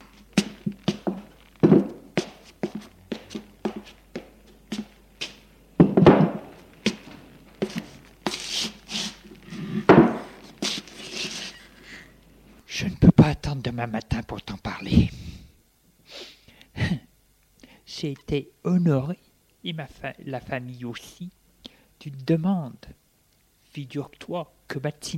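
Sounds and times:
rough shuffling: 0:00.0 - 0:05.6, 0:06.2 - 0:12.0
wooden chair handled knocked and scraped across the floor: 0:00.5 - 0:04.0, 0:05.8 - 0:11.6
speech: 0:13.8 - 0:15.0, 0:18.0 - 0:21.4, 0:22.0 - 0:23.0, 0:23.7 - 0:25.1.

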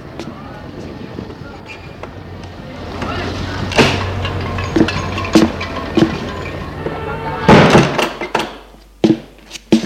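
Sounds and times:
heavy apartment building entrance door opening and swinging shut: 0:02.8 - 0:08.7.

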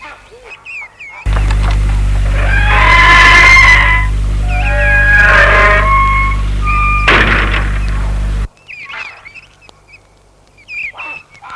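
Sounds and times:
quiet outdoor background: 0:00.0 - 0:11.5
steady low mechanical hum: 0:01.2 - 0:08.5
gate hinges squealing as gate swings open: 0:01.3 - 0:08.5.

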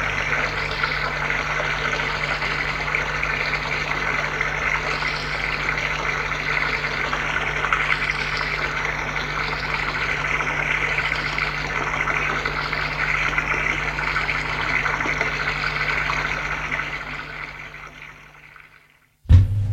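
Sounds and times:
shower water running: 0:00.0 - 0:18.6
brief bump: 0:19.3 - 0:19.7.

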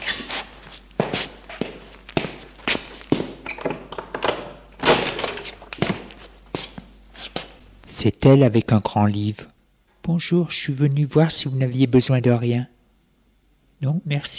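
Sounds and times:
footsteps of a man walking across a floor at home: 0:00.0 - 0:03.6, 0:05.4 - 0:07.6
door opening: 0:03.2 - 0:06.1
speech: 0:08.0 - 0:09.5, 0:10.1 - 0:12.8, 0:13.8 - 0:14.3.

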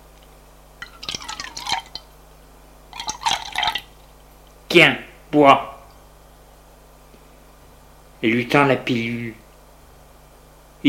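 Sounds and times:
whisky pouring from a bottle into a glass at a coffee table: 0:00.8 - 0:02.1, 0:02.9 - 0:04.1
speech: 0:04.7 - 0:05.7, 0:08.2 - 0:09.4.

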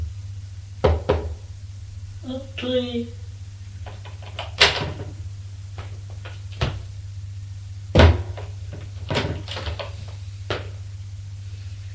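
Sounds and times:
steady low hum: 0:00.0 - 0:11.9
knocking on the wooden door of a bedroom: 0:00.8 - 0:01.4
speech: 0:02.2 - 0:03.2.

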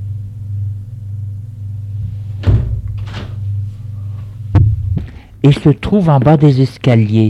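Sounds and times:
steady low rumble: 0:01.6 - 0:06.1
door clunking open: 0:02.4 - 0:03.4
speech: 0:05.4 - 0:07.2.

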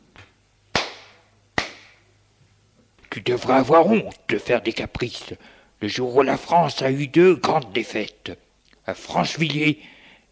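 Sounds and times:
faint low hum: 0:00.0 - 0:10.3
slaps across the face: 0:00.2 - 0:02.0
speech: 0:03.1 - 0:10.3.

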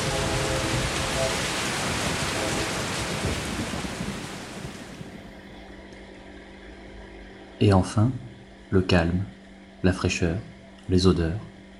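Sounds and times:
heavy rain shower: 0:00.0 - 0:07.0
speech: 0:07.6 - 0:11.5.

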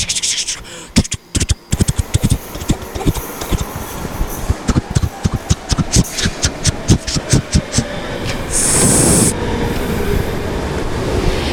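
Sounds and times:
subway train rumbling: 0:00.0 - 0:11.5
subway train wheels clacking over rails: 0:01.7 - 0:08.5.

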